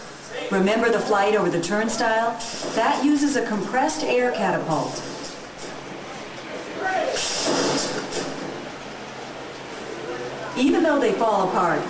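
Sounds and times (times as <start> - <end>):
subway train arriving and rumbling: 0.0 - 11.8
speech: 0.5 - 5.1, 10.6 - 11.8.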